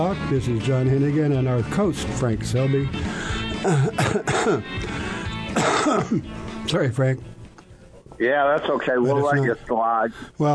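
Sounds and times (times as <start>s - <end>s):
speech: 0.0s - 7.4s, 8.2s - 10.5s
dry cough: 3.6s - 4.8s, 5.5s - 6.3s.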